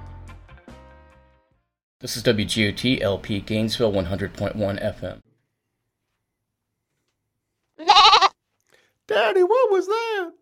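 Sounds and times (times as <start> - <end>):
speech: 2.0 - 5.2, 9.1 - 10.3
goat bleating with a wavering quavering tone: 7.8 - 8.4.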